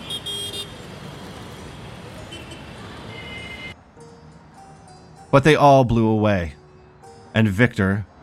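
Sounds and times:
car horns tooting: 0.0s - 0.9s, 2.2s - 3.8s
busy street traffic rumbling: 0.0s - 8.2s
speech: 5.3s - 6.6s, 7.4s - 8.1s.

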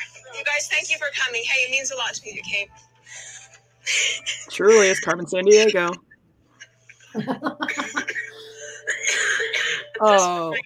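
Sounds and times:
speech: 0.6s - 3.3s, 3.9s - 6.1s, 7.1s - 8.0s, 10.0s - 10.6s
laughter: 6.9s - 10.5s
person forcing staged exaggerated coughs: 7.7s - 10.0s.

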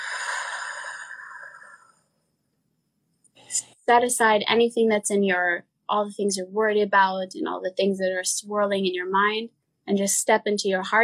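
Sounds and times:
deep breath: 0.0s - 2.0s
speech: 3.6s - 11.0s.

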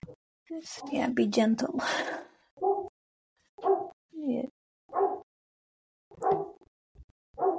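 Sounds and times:
speech: 0.5s - 2.8s
dog barking: 2.6s - 2.9s, 3.6s - 4.0s, 4.9s - 5.3s, 6.2s - 6.6s, 7.4s - 7.5s.

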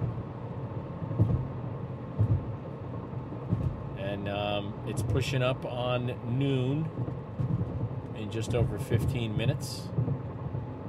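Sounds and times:
road noise rumble inside a moving car: 0.0s - 10.8s
soft bumps: 1.1s - 1.6s, 2.2s - 2.5s, 3.4s - 3.8s, 6.7s - 10.6s
speech: 4.2s - 7.2s, 8.2s - 10.2s.

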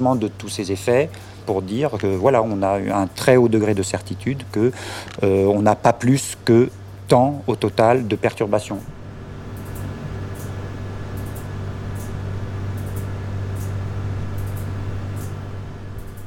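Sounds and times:
speech: 0.0s - 8.9s
lab fans: 0.0s - 16.2s
loud constant hum of lab equipment: 0.0s - 16.2s
laser beam shutters clicking in atomic clock lab: 9.5s - 15.4s, 16.0s - 16.2s.

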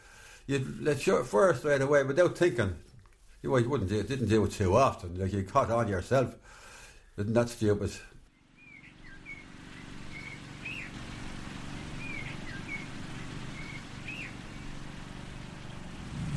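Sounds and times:
speech: 0.5s - 6.6s, 7.2s - 8.2s
birdsong chirps and whistles in a war cemetery: 8.2s - 16.0s
motor mower droning over graves in a war cemetery: 8.3s - 16.3s.

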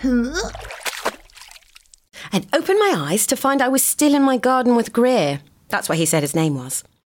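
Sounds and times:
person letting out a rising wordless cry: 0.0s - 0.7s
speech: 0.0s - 0.8s, 2.3s - 6.9s
water slopping: 0.4s - 2.1s
wet splashes of a jump landing in a muddy puddle: 0.4s - 2.1s.

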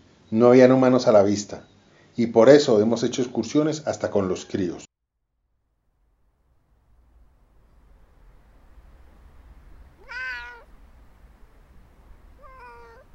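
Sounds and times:
speech: 0.3s - 4.9s
steady low rumble: 5.4s - 13.1s
female domestic cat meowing indoors: 9.9s - 13.1s.

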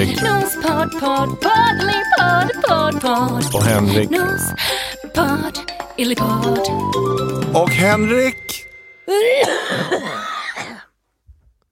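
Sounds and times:
speech: 0.8s - 10.8s
coughing fit: 9.1s - 11.0s.

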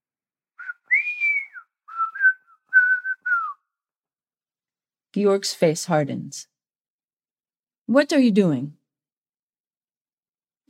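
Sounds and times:
person whistling a tune while preparing beef carpaccio in a kitchen: 0.6s - 3.7s
speech: 5.2s - 6.5s, 7.9s - 8.8s.

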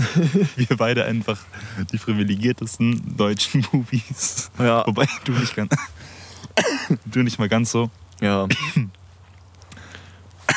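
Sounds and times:
laughter: 0.0s - 0.8s
low steady hum: 0.0s - 10.5s
speech: 0.2s - 9.0s
person coughing close to the mic: 5.0s - 5.9s, 6.6s - 7.0s, 8.5s - 8.9s.

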